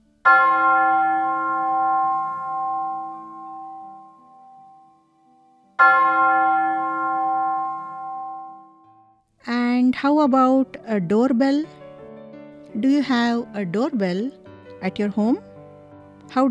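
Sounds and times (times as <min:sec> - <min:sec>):
speech: 0:00.2 - 0:00.7, 0:10.0 - 0:11.8, 0:12.8 - 0:15.5, 0:16.3 - 0:16.4
church bell ringing: 0:00.2 - 0:09.2.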